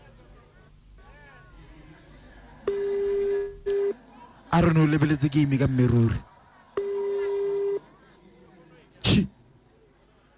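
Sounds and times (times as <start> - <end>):
telephone call tone as a call is dialled: 2.7 - 4.0, 6.8 - 7.8
speech: 4.5 - 6.3.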